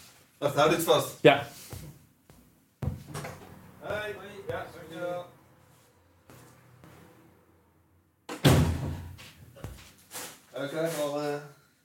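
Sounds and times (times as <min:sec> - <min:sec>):
speech: 0:00.4 - 0:01.9, 0:10.6 - 0:11.5
front door thump: 0:02.8 - 0:04.8, 0:08.3 - 0:09.8.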